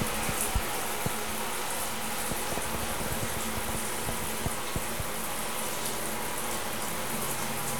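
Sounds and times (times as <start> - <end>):
rain on a tin roof: 0.0 - 7.7.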